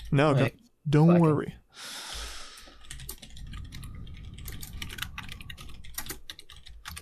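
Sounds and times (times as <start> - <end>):
speech: 0.1 - 2.0
typing on a computer keyboard: 2.8 - 7.0.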